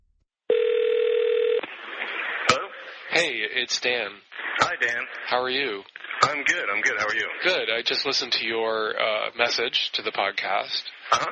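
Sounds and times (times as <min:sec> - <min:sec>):
telephone dial tone while placing a call: 0:00.5 - 0:01.6
faint telephone line hiss and static: 0:00.5 - 0:09.3
speech: 0:03.2 - 0:11.3.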